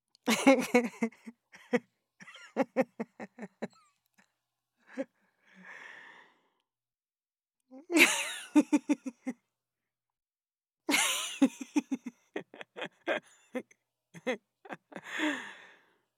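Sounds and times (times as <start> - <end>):
woman laughing: 0.2 - 3.8, 7.8 - 9.4, 10.9 - 15.7.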